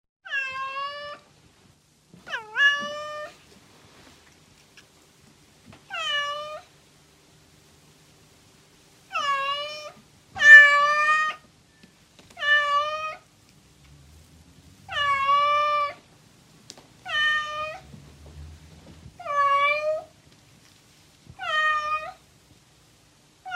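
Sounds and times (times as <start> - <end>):
female cat: 0.2 - 1.3, 2.2 - 3.4, 5.9 - 6.7, 9.1 - 11.5, 12.4 - 13.3, 14.9 - 16.0, 17.0 - 17.9, 19.2 - 20.1, 21.3 - 22.2.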